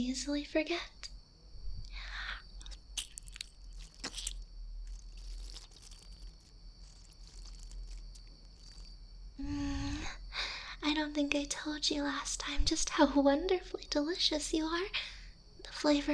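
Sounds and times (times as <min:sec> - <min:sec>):
speech: 0:00.0 - 0:01.0, 0:09.4 - 0:09.8, 0:10.9 - 0:16.1
short low voiced hum: 0:00.0 - 0:14.3
wet squishy biting and mouth sounds: 0:02.6 - 0:09.0.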